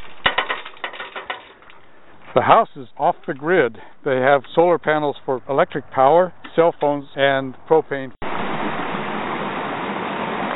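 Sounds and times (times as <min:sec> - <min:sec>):
speech: 0:02.3 - 0:08.2
creek running full after overnight rain in a farm pasture: 0:08.2 - 0:10.5.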